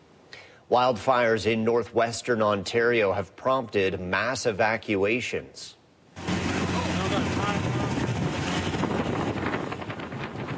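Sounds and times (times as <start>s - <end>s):
speech: 0.7s - 5.8s
heavy wind rushing over the microphone: 6.2s - 10.5s
motorboat engine droning across the water: 6.2s - 10.5s.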